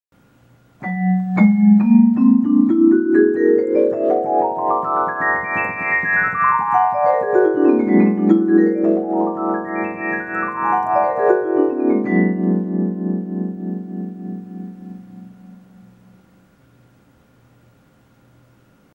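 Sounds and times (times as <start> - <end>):
dream sequence flashback music effect on a whole tone scale: 0.8 - 16.3.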